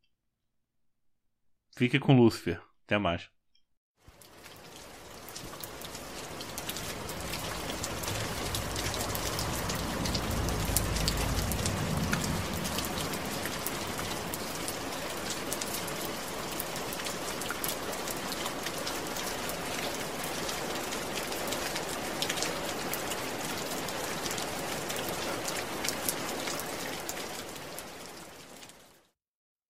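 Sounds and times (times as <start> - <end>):
speech: 1.8 - 3.4
steady rain striking surfaces: 4.0 - 29.2
low rumbling swell: 7.0 - 14.2.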